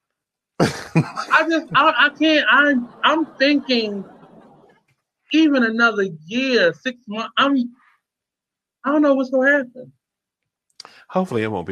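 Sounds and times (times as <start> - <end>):
person coughing: 0.6 - 1.4
person hacking and clearing throat: 0.6 - 1.4
speech: 0.6 - 4.2, 5.3 - 7.8, 8.8 - 10.0, 10.8 - 11.7
laughter: 0.6 - 4.6, 10.8 - 11.7.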